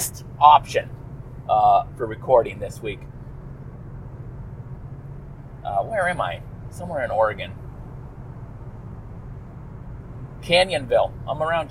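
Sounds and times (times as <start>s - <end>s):
road noise inside a car driven near Canyonville Oregon: 0.0s - 11.6s
speech: 0.4s - 3.1s, 5.6s - 7.6s, 10.4s - 11.6s.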